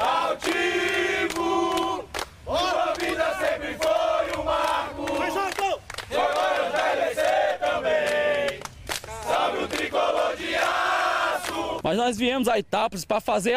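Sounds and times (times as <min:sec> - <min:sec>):
large crowd of football fans chanting and shouting in streets of Itápolis: 0:00.0 - 0:11.9
speech: 0:11.9 - 0:13.5.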